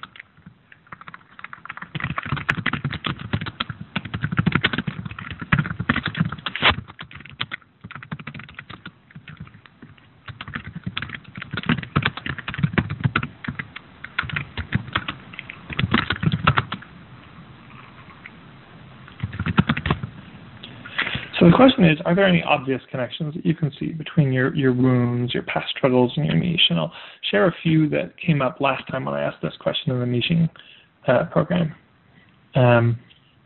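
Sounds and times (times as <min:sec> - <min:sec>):
typing on a computer keyboard with plastic key clicks: 0:00.0 - 0:16.9, 0:19.1 - 0:20.1
speech: 0:21.6 - 0:31.8, 0:32.5 - 0:33.0.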